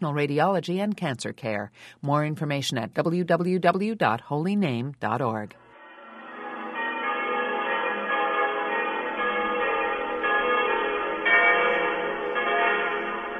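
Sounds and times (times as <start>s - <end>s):
speech: 0.0s - 5.6s
many church bells pealing across Salzburg Austria: 5.7s - 13.3s.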